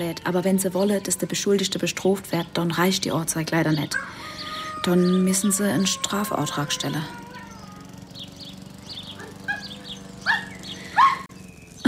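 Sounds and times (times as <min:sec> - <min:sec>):
speech: 0:00.0 - 0:07.2
steady low hum: 0:00.0 - 0:11.8
small dog giving short high yipping barks: 0:03.9 - 0:07.8, 0:09.1 - 0:11.3.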